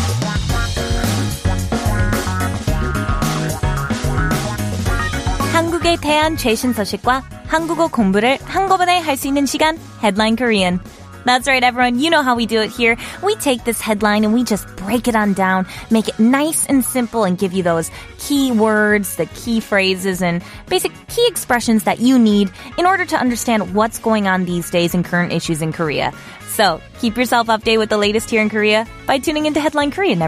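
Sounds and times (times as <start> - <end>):
hip hop rock song: 0.1 - 5.5
speech: 6.3 - 30.2.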